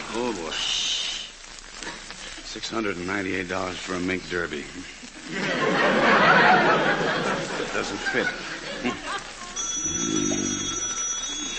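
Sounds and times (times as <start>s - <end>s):
speech: 0.1s - 1.0s, 2.6s - 9.0s
laughter: 5.0s - 9.6s
old-fashioned telephone bell ringing: 9.6s - 11.5s
person murmuring: 9.9s - 10.8s.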